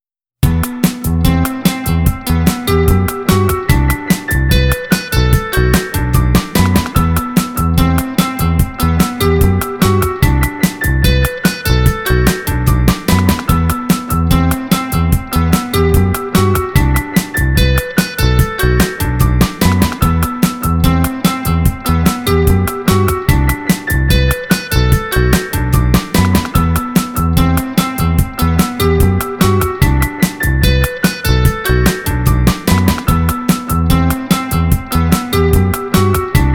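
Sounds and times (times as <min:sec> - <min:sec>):
E minor chord loop: 0:00.4 - 0:36.5.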